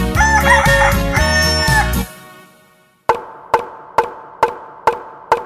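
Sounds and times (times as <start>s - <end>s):
loud bright rooster crow: 0.2s - 2.1s
sharp evenly spaced knocks: 3.1s - 5.4s.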